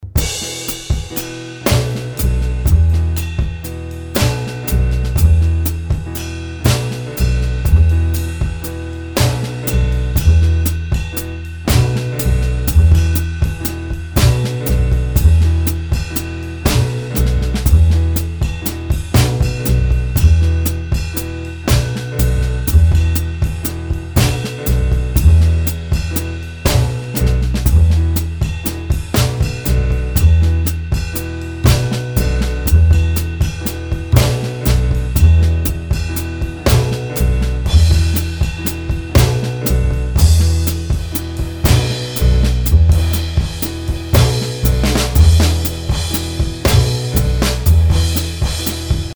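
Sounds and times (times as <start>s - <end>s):
improvised backing music: 0.0s - 49.1s.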